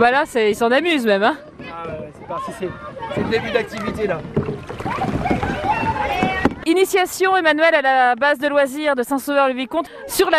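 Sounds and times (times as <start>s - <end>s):
speech: 0.0s - 5.5s, 6.1s - 10.3s
paddles working the water on a narrow river: 0.0s - 10.3s
school class voices chattering and calling out: 0.0s - 10.3s
canoes knocking together on a narrow river: 1.6s - 6.7s.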